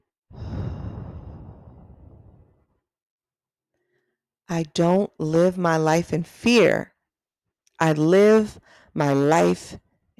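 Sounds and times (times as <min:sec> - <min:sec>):
deep breath taken as a calming exercise: 0:00.3 - 0:02.5
speech: 0:04.5 - 0:06.9, 0:07.8 - 0:09.8.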